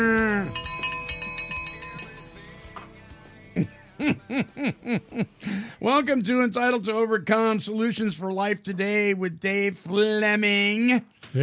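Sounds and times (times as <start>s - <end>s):
cowbell clinking in bright metallic strikes: 0.0s - 2.9s
laughter: 3.6s - 5.4s
speech: 3.6s - 11.4s.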